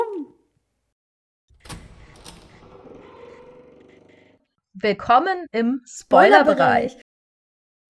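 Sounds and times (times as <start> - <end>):
door creaking as it swings shut: 1.5 - 4.2
speech: 4.8 - 7.1.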